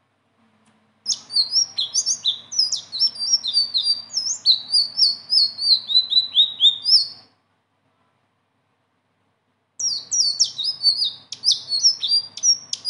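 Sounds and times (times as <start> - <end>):
blue-winged leafbird song: 1.1 - 7.4, 9.8 - 12.8.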